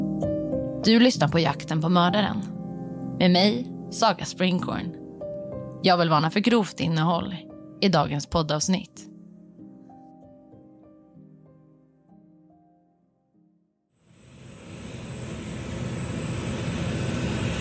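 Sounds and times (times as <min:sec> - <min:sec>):
soft melodic music: 0:00.0 - 0:13.8
speech: 0:00.8 - 0:02.6, 0:03.2 - 0:05.0, 0:05.8 - 0:09.1
passenger airliner taking off from Barcelona airport: 0:14.1 - 0:17.5.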